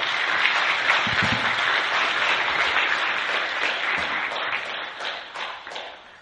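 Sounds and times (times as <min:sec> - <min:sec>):
large church audience applauding in a roomy indoor space: 0:00.0 - 0:06.2.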